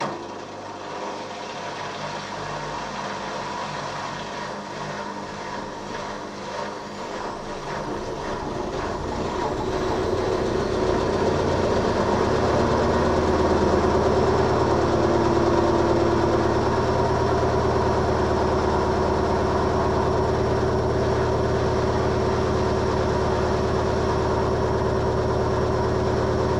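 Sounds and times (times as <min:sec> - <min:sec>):
washing machine spin cycle: 0:00.0 - 0:26.5.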